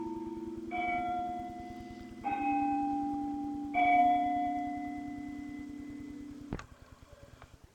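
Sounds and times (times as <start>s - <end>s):
carillon bells ringing: 0.0s - 6.5s.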